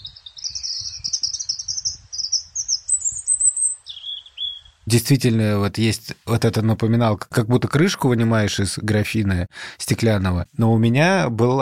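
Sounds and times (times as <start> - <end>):
European robin singing: 0.0 - 5.2
speech: 4.9 - 11.6.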